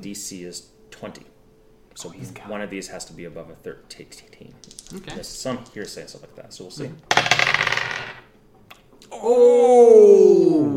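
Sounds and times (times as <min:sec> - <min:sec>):
speech: 0:00.0 - 0:01.4, 0:02.0 - 0:08.2, 0:09.2 - 0:10.7
dice clattering across a hard tabletop: 0:04.6 - 0:05.8, 0:07.1 - 0:08.3
person exclaiming: 0:09.1 - 0:10.7.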